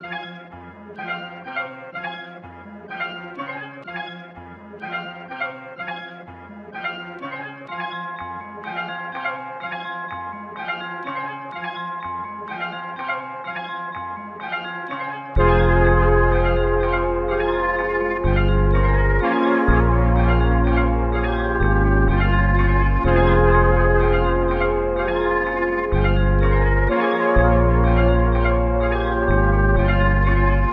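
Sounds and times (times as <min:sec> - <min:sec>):
melody at 125 BPM in F minor: 0:07.7 - 0:30.7.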